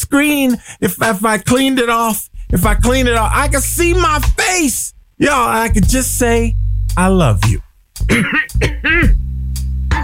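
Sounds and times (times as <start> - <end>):
speech: 0.1 - 9.2
person clearing throat: 8.1 - 9.2.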